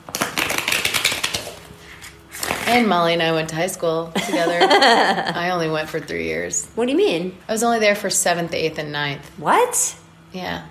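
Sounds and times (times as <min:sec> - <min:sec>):
deck of cards being riffled and shuffled: 0:00.0 - 0:02.9
speech: 0:02.7 - 0:10.6.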